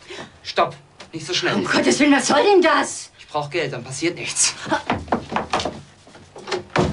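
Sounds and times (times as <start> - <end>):
speech: 0.6 - 5.0
wooden front door being pushed shut with thuds and knocks: 6.4 - 6.9.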